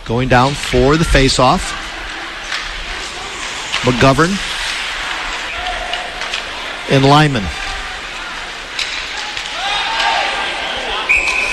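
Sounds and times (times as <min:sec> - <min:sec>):
ice hockey crowd noise: 0:00.0 - 0:11.5
speech: 0:00.1 - 0:01.8, 0:03.8 - 0:04.5, 0:06.9 - 0:07.6
referee whistle stopping play in an ice hockey game: 0:11.0 - 0:11.5.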